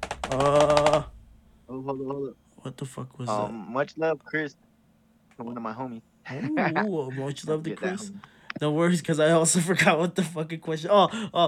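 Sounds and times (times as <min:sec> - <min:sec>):
rapid keyboard tapping: 0:00.0 - 0:01.2
speech: 0:00.3 - 0:01.1, 0:01.9 - 0:04.7, 0:05.4 - 0:11.4.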